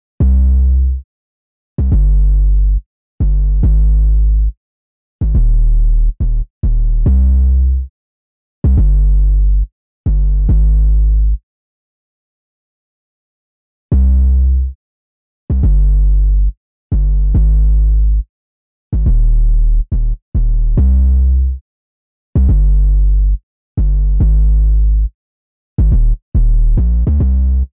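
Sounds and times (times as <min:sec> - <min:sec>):
808 bass: 0:00.2 - 0:01.0, 0:01.8 - 0:04.5, 0:05.2 - 0:07.9, 0:08.6 - 0:11.4, 0:13.9 - 0:14.8, 0:15.5 - 0:18.2, 0:18.9 - 0:21.6, 0:22.4 - 0:25.1, 0:25.8 - 0:27.7.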